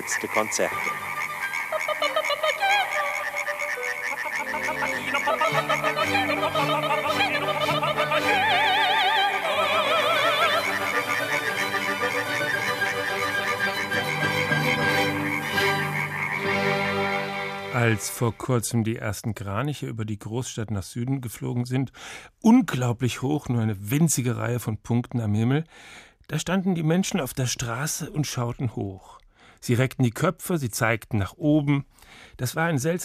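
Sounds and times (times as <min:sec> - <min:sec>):
speech: 0:00.0 - 0:01.1, 0:05.1 - 0:08.9, 0:17.8 - 0:33.0
dense chorus of tree frogs trilling: 0:00.0 - 0:18.2.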